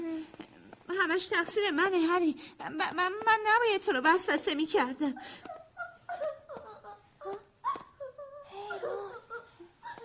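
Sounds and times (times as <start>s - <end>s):
speech: 1.1s - 5.5s
girl crying and sobbing with shaky whimpers: 5.1s - 10.0s.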